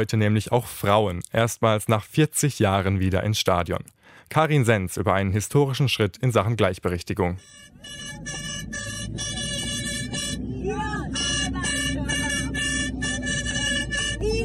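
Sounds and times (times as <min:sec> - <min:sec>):
speech: 0:00.0 - 0:09.3, 0:10.6 - 0:11.2
low minibus rumble: 0:07.4 - 0:14.4
plastic horns blown by women in a minibus: 0:07.4 - 0:14.4.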